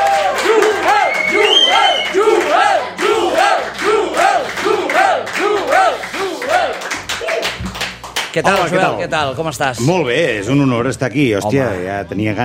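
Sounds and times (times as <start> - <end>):
crowd chanting: 0.0 - 6.8
loud crowd cheering: 0.0 - 7.8
audience dense clapping: 0.0 - 8.8
speech: 8.4 - 12.4.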